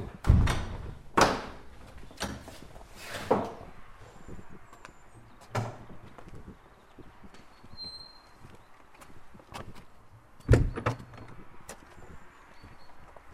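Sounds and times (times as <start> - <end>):
wooden doors opening and shutting with latch clacks: 0.0 - 3.8, 5.2 - 6.1, 10.4 - 12.0.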